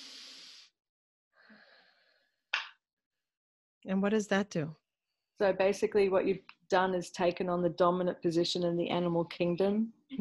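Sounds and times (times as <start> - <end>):
person breathing during a posture exercise: 0.0 - 0.8, 1.4 - 2.4
speech: 3.8 - 4.8, 5.4 - 10.2.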